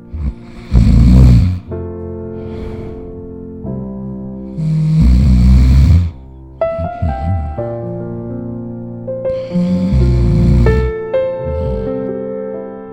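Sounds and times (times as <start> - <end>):
man snoring loudly with whistling exhales: 0.0 - 1.7, 2.4 - 3.2, 4.6 - 7.8, 9.3 - 12.1.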